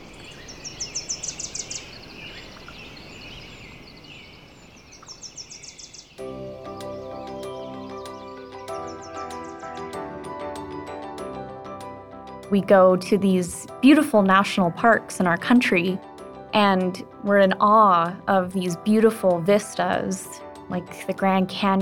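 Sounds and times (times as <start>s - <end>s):
high rapid bird trills in a valley: 0.0s - 10.2s
sustained tonal musical backdrop: 6.2s - 21.8s
speech: 12.5s - 21.8s.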